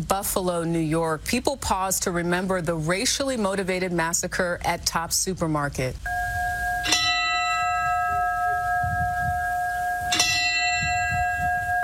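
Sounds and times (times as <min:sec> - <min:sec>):
speech: 0:00.0 - 0:06.3
resonant church bell strikes with long ringing hum: 0:06.1 - 0:11.8.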